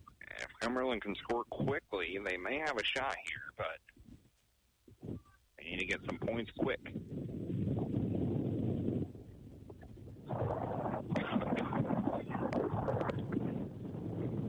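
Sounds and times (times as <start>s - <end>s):
speech: 0.6s - 3.9s, 5.7s - 7.3s
wind buffeting the microphone at an outdoor football game: 4.9s - 14.4s.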